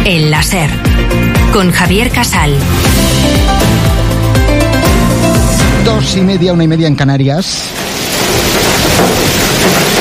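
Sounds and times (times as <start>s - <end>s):
speech: 0.1s - 4.5s, 5.8s - 8.0s
dense hail pelting down in a hailstorm: 7.4s - 9.9s
deep rumble of thunder: 7.7s - 9.9s.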